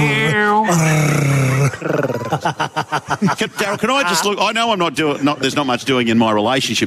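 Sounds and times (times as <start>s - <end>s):
man growling like an animal: 0.0s - 2.5s
laughter: 0.0s - 5.7s
speech: 1.8s - 6.8s.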